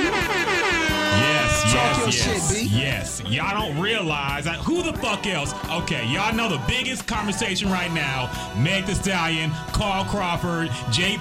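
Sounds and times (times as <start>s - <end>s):
brassy air horn sound effect: 0.0s - 2.7s
speech: 1.2s - 11.1s.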